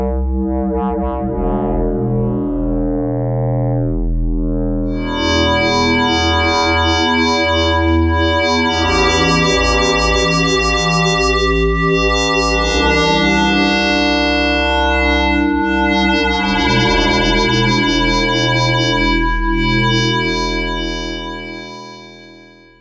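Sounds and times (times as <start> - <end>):
hollow synthesizer drone: 0.1 - 22.7.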